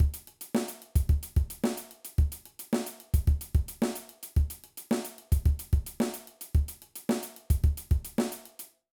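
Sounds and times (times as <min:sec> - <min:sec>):
punk drum beat: 0:00.0 - 0:08.7.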